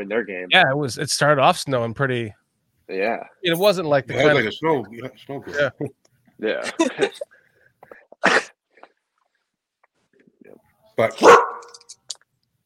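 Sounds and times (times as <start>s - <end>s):
speech: 0.0s - 7.3s, 11.0s - 11.6s
laughter: 6.5s - 7.3s
female mixed-breed dog barking: 11.2s - 11.8s.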